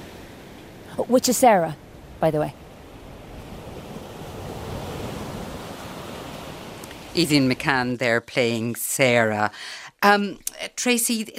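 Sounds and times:
sea waves washing onto the shore of the coast: 0:00.0 - 0:08.2
speech: 0:01.0 - 0:02.6, 0:07.2 - 0:11.3.

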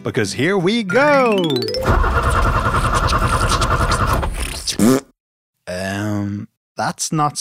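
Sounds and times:
speech: 0:00.0 - 0:02.4, 0:04.7 - 0:05.0, 0:06.8 - 0:07.4
truck engine cranking and sputtering without power: 0:01.8 - 0:04.6.

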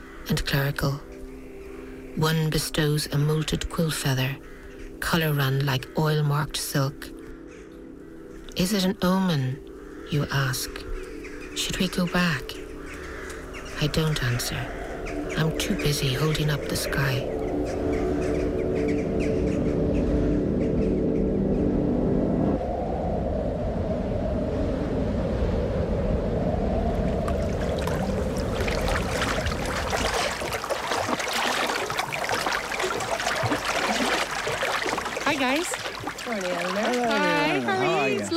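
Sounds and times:
speech: 0:00.3 - 0:01.1, 0:02.2 - 0:07.2, 0:08.6 - 0:10.9, 0:11.6 - 0:12.6, 0:13.8 - 0:14.8, 0:15.4 - 0:18.0
bright warbling birdcalls: 0:02.8 - 0:05.4, 0:06.8 - 0:21.7, 0:27.3 - 0:38.3
low rumbling hum: 0:17.3 - 0:37.8
water sloshing against a moored boat's hull: 0:27.0 - 0:38.3.

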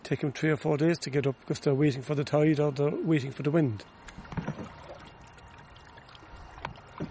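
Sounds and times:
steady wash of moving water: 0:00.0 - 0:07.0
speech: 0:00.1 - 0:04.2
canoe paddle strokes dipping into water: 0:04.1 - 0:07.0.

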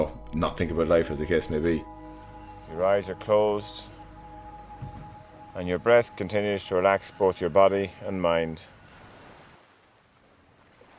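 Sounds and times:
speech: 0:00.0 - 0:02.0, 0:02.7 - 0:03.9, 0:05.6 - 0:08.8
wind: 0:00.0 - 0:10.9
ocean surf: 0:05.1 - 0:10.1.

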